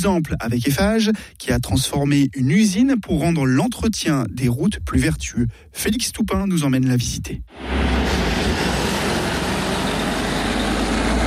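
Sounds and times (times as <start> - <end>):
speech: 0.0 - 7.9
heavy truck engine rumbling leaving a factory: 7.5 - 11.2
truck road noise: 7.5 - 11.2.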